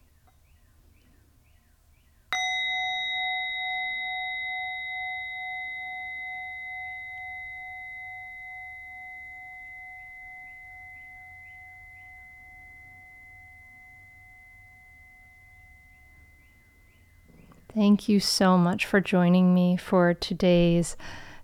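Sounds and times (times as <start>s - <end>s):
faint birdsong chirping: 0.0s - 2.6s, 8.6s - 18.0s
meditation bell struck and ringing: 2.3s - 17.8s
speech: 17.8s - 21.3s.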